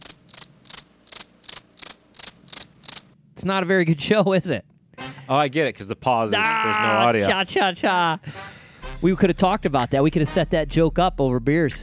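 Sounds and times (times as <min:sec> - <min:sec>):
crickets chirping: 0:00.0 - 0:03.2
speech: 0:03.4 - 0:04.7, 0:05.3 - 0:11.8.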